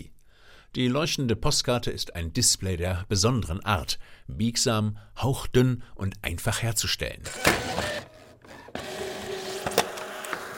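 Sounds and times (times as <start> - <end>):
speech: 0.7 - 7.9
printer printing with conductive ink: 7.3 - 10.5.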